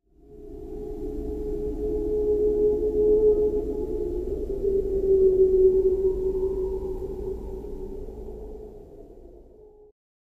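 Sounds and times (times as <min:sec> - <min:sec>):
whales: 0:00.2 - 0:09.9.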